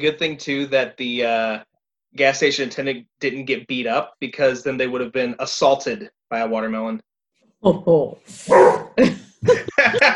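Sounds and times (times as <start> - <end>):
speech: 0.0 - 10.1
dog barking: 8.5 - 9.0
laughter: 9.0 - 10.1.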